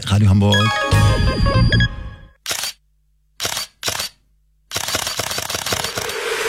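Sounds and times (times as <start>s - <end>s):
speech: 0.0s - 0.8s
music: 0.5s - 2.4s
camera shutter clicking in continuous shooting: 2.4s - 2.8s, 3.4s - 6.3s.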